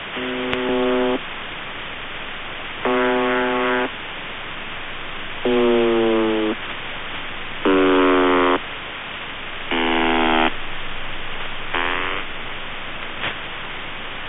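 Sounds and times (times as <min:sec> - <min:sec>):
broken horn buzzer over USB and carrier: 0:00.2 - 0:01.2, 0:02.9 - 0:03.9, 0:05.5 - 0:06.6, 0:07.7 - 0:08.6, 0:09.7 - 0:10.5, 0:11.7 - 0:12.3.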